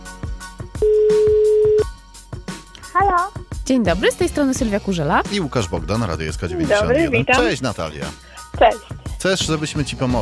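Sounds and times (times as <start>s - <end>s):
steady telephone tone: 0.8s - 1.9s
speech: 3.7s - 10.2s.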